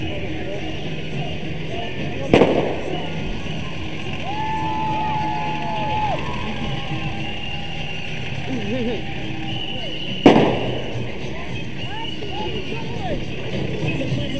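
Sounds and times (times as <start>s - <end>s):
busy outdoor crowd chatter: 0.0s - 14.3s
laughter: 0.0s - 14.3s
firework bangs outdoors: 2.2s - 8.4s, 10.0s - 11.3s.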